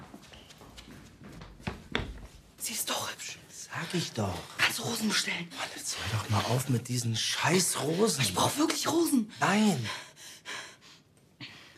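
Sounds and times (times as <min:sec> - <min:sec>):
panicked heavy breathing with gasping: 0:03.6 - 0:11.7
speech: 0:03.7 - 0:10.1.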